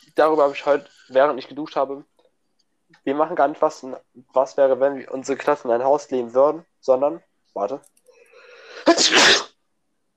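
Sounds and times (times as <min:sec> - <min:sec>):
speech: 0:00.2 - 0:02.1, 0:03.0 - 0:07.9, 0:08.8 - 0:09.5
person sneezing: 0:08.7 - 0:09.6.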